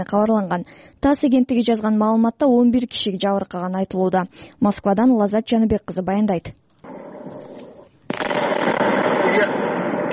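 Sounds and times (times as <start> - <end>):
speech: 0.0 - 6.6
artillery shells and mines exploding in a fire at a military ammunition depot in Krasnoyarsk region: 6.9 - 10.1.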